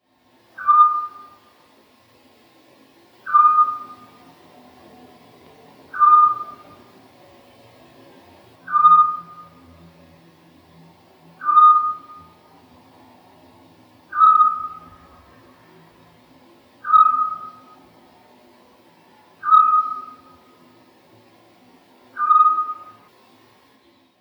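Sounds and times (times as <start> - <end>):
Otus scops calling: 0.5 - 1.6, 3.2 - 4.4, 5.9 - 6.9, 8.6 - 9.7, 11.4 - 12.5, 14.1 - 15.2, 16.8 - 17.8, 19.4 - 20.7, 22.1 - 23.1.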